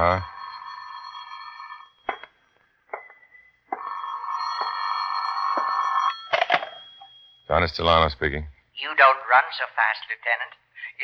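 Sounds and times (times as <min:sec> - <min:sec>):
speech: 0:00.0 - 0:00.3, 0:07.5 - 0:11.0
telephone bell ringing in an office: 0:00.0 - 0:07.5.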